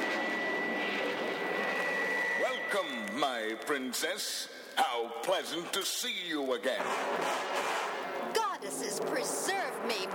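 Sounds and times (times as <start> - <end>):
robot jet plane roaring past at supersonic speed: 0.0 - 2.7
speech: 2.7 - 7.8, 8.8 - 10.1.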